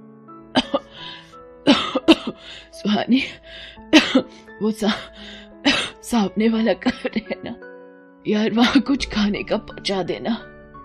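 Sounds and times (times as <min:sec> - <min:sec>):
person coughing hard: 0:00.6 - 0:00.9, 0:01.7 - 0:02.4, 0:03.9 - 0:04.3, 0:05.7 - 0:06.0
speech: 0:00.7 - 0:10.5
raspy breaths: 0:00.9 - 0:01.4, 0:02.3 - 0:05.6.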